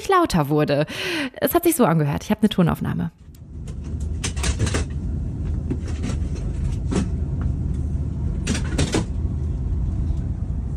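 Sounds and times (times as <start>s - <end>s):
speech: 0.0s - 3.3s
low rumble of the moving train: 3.3s - 10.7s
train worker converting seats into sleeping berths with clattering knocks and scrapes: 3.6s - 9.3s.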